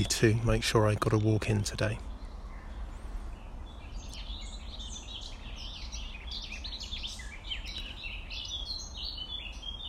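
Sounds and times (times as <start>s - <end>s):
speech: 0.0s - 2.1s
several birds chirping and trilling outdoors in summer: 0.0s - 9.8s
steady outdoor rumble of wind or traffic: 0.0s - 9.8s.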